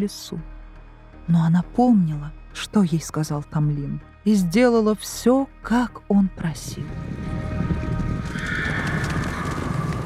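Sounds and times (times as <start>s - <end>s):
speech: 0.0s - 0.5s, 1.3s - 7.9s
horse hooves clip-clopping: 7.6s - 10.0s.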